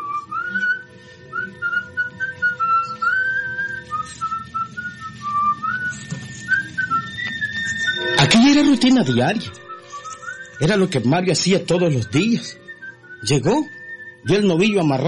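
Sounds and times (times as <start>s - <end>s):
low murmuring background: 0.0s - 10.9s
man whistling a cheerful song while walking: 0.0s - 15.0s
speech: 8.6s - 9.7s, 10.6s - 12.6s, 13.2s - 15.0s.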